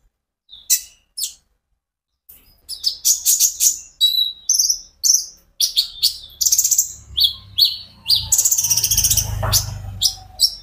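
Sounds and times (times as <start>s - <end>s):
caged Van Hasselt's sunbird singing: 2.3s - 10.6s.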